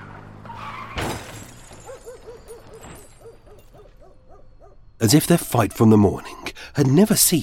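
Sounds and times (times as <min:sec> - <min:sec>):
car tyres screeching in a skid: 0:00.0 - 0:04.0
loud crash: 0:00.9 - 0:01.8
speech: 0:05.0 - 0:07.4.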